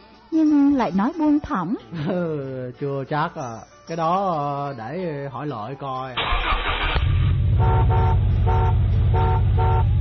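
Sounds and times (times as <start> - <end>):
speech: 0.4 - 9.3
idling engine: 6.2 - 9.9
vehicle horn honking: 7.5 - 9.9.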